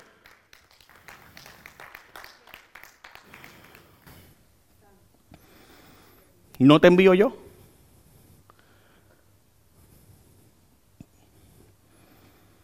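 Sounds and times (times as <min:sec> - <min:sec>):
church audience clapping: 0:00.0 - 0:04.2
speech: 0:06.6 - 0:07.4.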